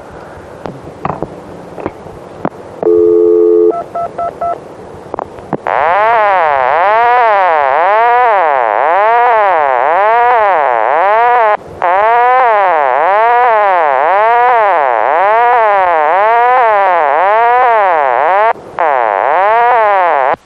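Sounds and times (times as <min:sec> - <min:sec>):
touch-tone dialing of a long-distance telephone number: 0:02.8 - 0:04.6
warbling telephone tone for a non-existent prefix or area code: 0:02.8 - 0:04.6, 0:05.7 - 0:20.4.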